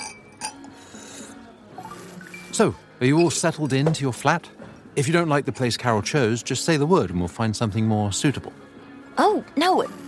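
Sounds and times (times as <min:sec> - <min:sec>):
glasses clinking in a toast: 0:00.0 - 0:01.0, 0:01.8 - 0:04.3
speech: 0:02.5 - 0:10.0.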